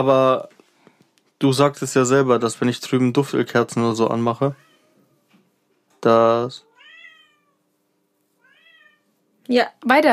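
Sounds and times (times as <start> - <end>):
speech: 0.0 - 0.6, 1.4 - 4.7, 6.0 - 6.7, 9.5 - 10.1
cat meowing: 4.6 - 5.4, 6.6 - 7.7, 8.4 - 9.2.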